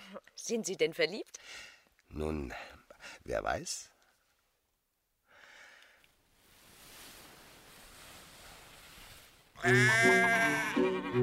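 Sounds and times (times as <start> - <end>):
soft steady hiss: 0.0 - 9.6
speech: 0.1 - 3.9, 9.6 - 11.2
sheep bleating at a livestock show on a meadow: 9.6 - 11.2.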